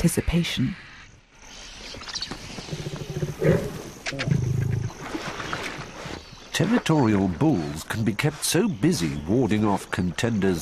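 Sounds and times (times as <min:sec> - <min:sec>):
speech: 0:00.0 - 0:00.8, 0:06.6 - 0:10.6
lion near a carcass growling and grunting: 0:02.6 - 0:05.0.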